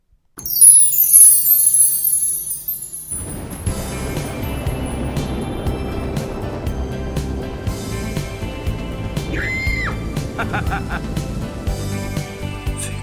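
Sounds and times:
dense rumbling wash of sound: 3.2s - 12.6s
loud piercing screams: 9.2s - 10.2s
woman's high shriek: 9.3s - 10.0s
laughter: 10.3s - 11.2s.

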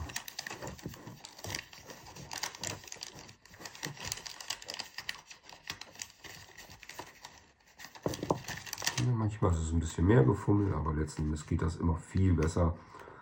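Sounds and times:
sticker being applied with crackles and taps: 0.0s - 9.1s
wrapping paper crinkling while wrapping a gift: 0.0s - 9.2s
speech: 9.3s - 13.0s.

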